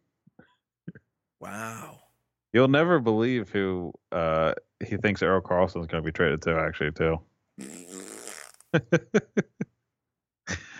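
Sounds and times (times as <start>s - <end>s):
speech: 1.4s - 7.8s, 8.7s - 9.6s
voice blowing a sputtering mouth fart: 7.6s - 8.7s.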